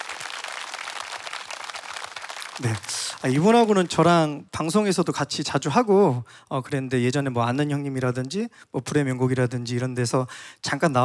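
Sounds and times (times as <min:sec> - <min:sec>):
audience applause welcoming a guitarist on stage: 0:00.0 - 0:04.2
speech: 0:02.6 - 0:11.0.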